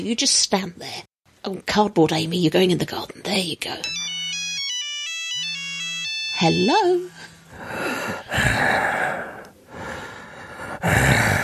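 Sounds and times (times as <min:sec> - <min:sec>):
speech: 0:00.0 - 0:04.0, 0:06.4 - 0:09.3
person panting into a phone after jogging: 0:07.3 - 0:11.4.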